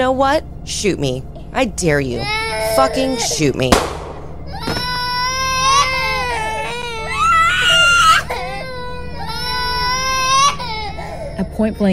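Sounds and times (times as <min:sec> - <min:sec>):
speech: 0:00.0 - 0:04.0, 0:11.6 - 0:11.9
low steady hum: 0:00.0 - 0:11.9
two young children wailing in a house: 0:02.2 - 0:03.7, 0:04.4 - 0:11.9.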